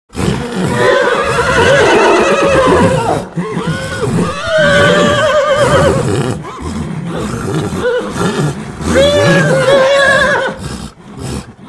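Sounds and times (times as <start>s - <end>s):
horse grunting: 0.1s - 11.6s.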